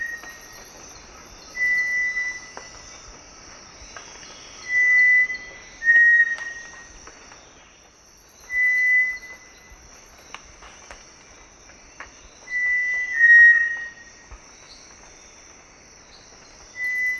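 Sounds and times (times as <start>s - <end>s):
cinereous tinamou whistling level pure notes in Ecuador: 1.4s - 2.6s, 4.5s - 6.9s, 8.4s - 9.7s, 12.4s - 14.2s, 16.7s - 17.1s.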